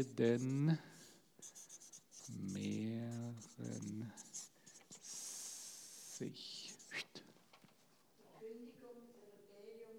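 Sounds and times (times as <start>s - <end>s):
speech: 0.0s - 1.6s, 2.3s - 4.3s, 6.2s - 6.6s
writing on a board: 0.0s - 7.1s.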